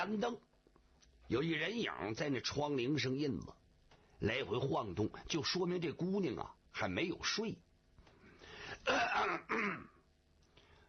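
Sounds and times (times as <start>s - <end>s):
speech: 0.0s - 0.5s, 1.3s - 3.6s, 4.2s - 7.7s, 8.8s - 9.9s
storyteller acting out a man's forced raspy fake coughs: 8.8s - 10.0s.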